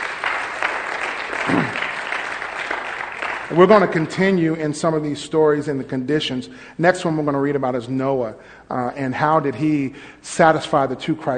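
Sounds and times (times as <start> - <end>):
congregation clapping: 0.0 - 4.4
speech: 3.5 - 11.3.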